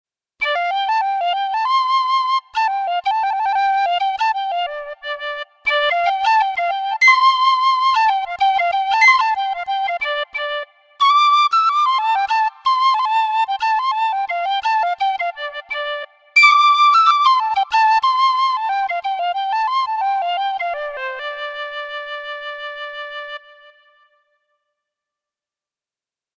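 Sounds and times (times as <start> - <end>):
flutes: 0.4 - 24.4
penny whistle: 5.7 - 9.8, 16.4 - 18.1.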